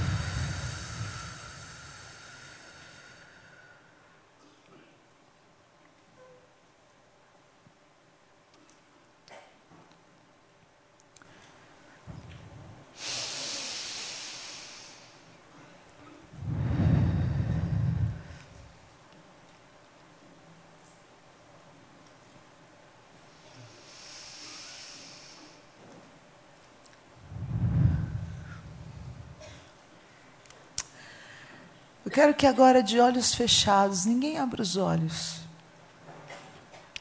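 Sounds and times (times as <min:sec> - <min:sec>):
slow deep exhales from a guided breathing exercise: 0:00.0 - 0:04.2, 0:12.1 - 0:15.3, 0:16.3 - 0:18.8, 0:23.3 - 0:25.7, 0:27.2 - 0:31.8
speech: 0:32.1 - 0:35.4.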